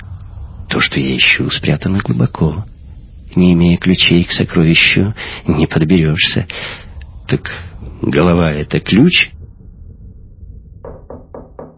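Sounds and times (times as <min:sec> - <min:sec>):
low steady rumble: 0:00.0 - 0:11.7
speech: 0:00.8 - 0:02.8, 0:03.4 - 0:09.4
timid knocking on a door: 0:10.8 - 0:11.7.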